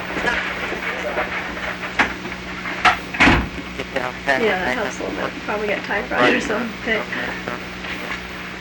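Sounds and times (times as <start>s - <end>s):
people talking: 0.1s - 1.4s, 3.7s - 8.1s
door swinging shut: 3.1s - 3.6s.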